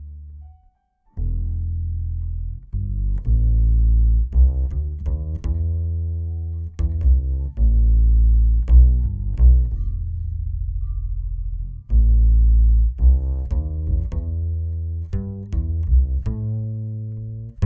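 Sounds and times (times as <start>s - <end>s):
Jazz Bass guitar without equalisation: 0.0s - 17.6s.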